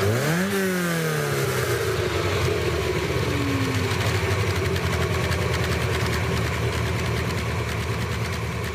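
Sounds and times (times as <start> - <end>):
Ferrari 308 GT4 engine revving and idling: 0.0 - 8.7.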